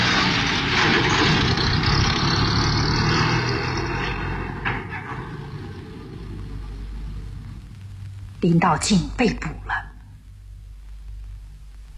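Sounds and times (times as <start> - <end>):
small car engine driving away: 0.0 - 7.6
speech: 8.4 - 9.8.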